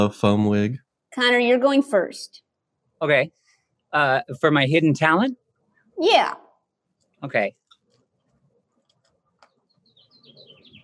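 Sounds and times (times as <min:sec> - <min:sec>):
speech: 0:00.0 - 0:02.4, 0:03.0 - 0:05.4, 0:06.0 - 0:06.4, 0:07.2 - 0:07.6
birds chirping: 0:09.1 - 0:10.8.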